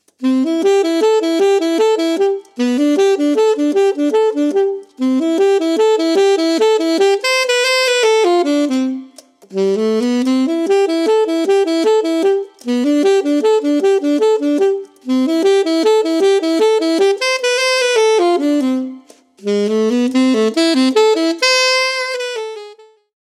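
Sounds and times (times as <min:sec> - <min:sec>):
alto saxophone: 0:00.0 - 0:23.1.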